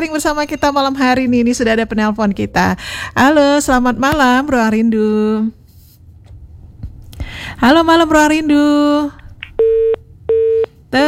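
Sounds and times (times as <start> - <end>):
speech: 0.0 - 5.6, 7.4 - 9.2
busy tone after a radio phone-in call cut off: 9.6 - 10.7.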